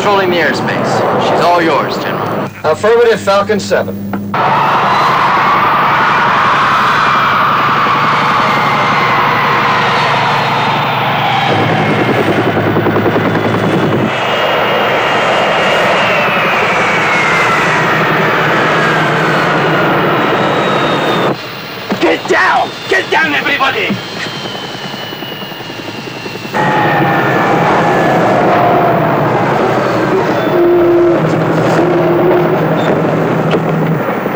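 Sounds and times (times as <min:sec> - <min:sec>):
speech: 0:00.0 - 0:04.8
civil airliner engines roaring as it touches down: 0:00.0 - 0:34.3.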